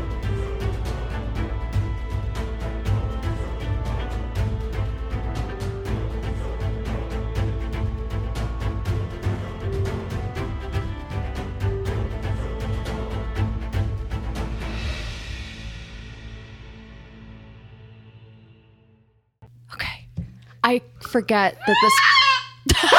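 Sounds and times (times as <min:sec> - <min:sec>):
music: 0:00.0 - 0:19.5
speech: 0:20.7 - 0:22.1
cockatoo squawking: 0:21.6 - 0:22.6
laughter: 0:22.6 - 0:22.9.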